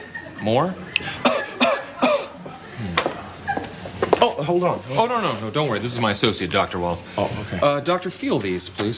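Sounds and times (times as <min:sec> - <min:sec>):
speech: 0:00.4 - 0:01.3, 0:04.2 - 0:08.9
person coughing: 0:01.1 - 0:02.4.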